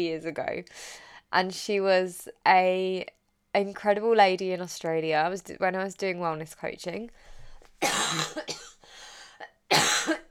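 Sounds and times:
speech: 0:00.0 - 0:08.6
person coughing: 0:07.8 - 0:08.8, 0:09.7 - 0:10.3.

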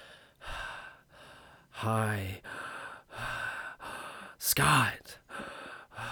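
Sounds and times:
strained gasping breathing: 0:00.0 - 0:01.7, 0:02.4 - 0:04.4, 0:05.3 - 0:06.1
speech: 0:01.8 - 0:02.5, 0:04.4 - 0:05.2.

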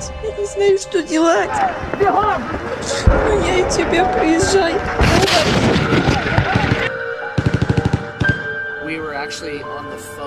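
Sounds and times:
speech: 0:00.4 - 0:06.5, 0:09.0 - 0:10.2
dense rumbling noise: 0:01.7 - 0:06.9
heavier gunshot: 0:03.0 - 0:08.6
machine gun fire: 0:03.1 - 0:08.5.

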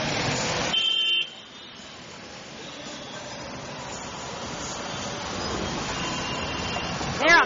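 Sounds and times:
dense road traffic with bikes going between vehicles roaring: 0:00.0 - 0:07.4
car horn blaring: 0:00.7 - 0:01.8, 0:05.6 - 0:07.0.

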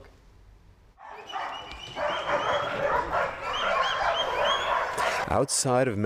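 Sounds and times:
puppies barking and yipping: 0:01.0 - 0:05.3
speech: 0:05.3 - 0:06.0.

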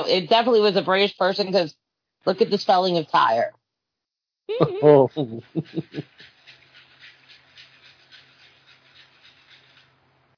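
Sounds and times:
speech: 0:00.0 - 0:03.6, 0:04.5 - 0:06.3
laughter: 0:04.5 - 0:06.3
dog panting: 0:05.5 - 0:09.8.

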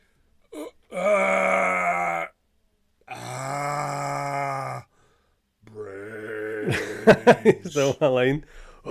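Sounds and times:
person imitating zombie groans with raspy moans: 0:00.5 - 0:02.4, 0:03.1 - 0:04.9, 0:05.6 - 0:07.1
laughter: 0:06.6 - 0:08.1
speech: 0:06.7 - 0:08.8.

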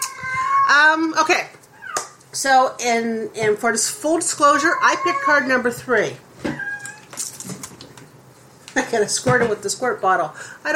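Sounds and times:
cat meowing: 0:00.0 - 0:00.9, 0:04.4 - 0:05.6, 0:06.5 - 0:07.1
speech: 0:00.7 - 0:01.6, 0:02.4 - 0:06.6, 0:08.9 - 0:10.7.

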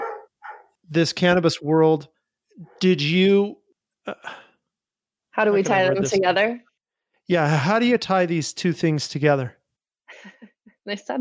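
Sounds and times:
dog barking with short sharp woofs: 0:00.0 - 0:00.8
speech: 0:00.9 - 0:04.4, 0:05.4 - 0:06.7, 0:07.3 - 0:09.6, 0:10.2 - 0:11.1
laughter: 0:05.6 - 0:06.2.

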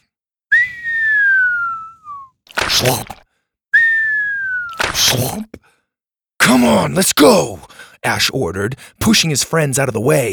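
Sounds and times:
kid whistling a falling-bomb sound while dropping dung bombs from a tree branch: 0:00.5 - 0:03.0, 0:03.8 - 0:05.2
speech: 0:02.8 - 0:03.2, 0:05.1 - 0:05.6, 0:06.6 - 0:10.3.

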